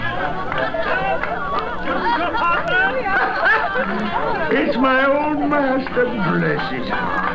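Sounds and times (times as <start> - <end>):
lively crowd chattering and laughing at a Christmas party: 0.0 - 7.3
speech: 3.8 - 7.3.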